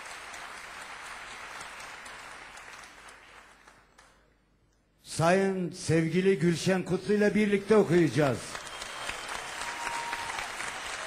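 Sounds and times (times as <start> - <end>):
crowd applause welcoming a singer onstage at a music program: 0.0 - 4.2, 8.1 - 11.0
speech: 5.2 - 8.6.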